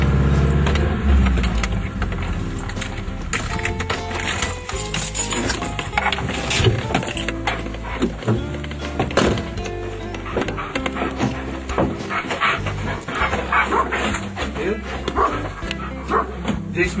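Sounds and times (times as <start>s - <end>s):
car engine running while being parked: 0.0s - 16.7s
rattling and knocking of a car being parked: 0.0s - 16.7s.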